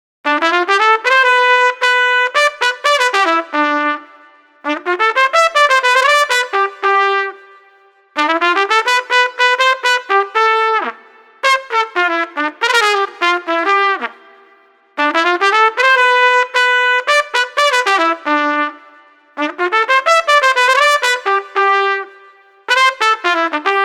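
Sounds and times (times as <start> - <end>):
trumpet solo: 0.3 - 23.8.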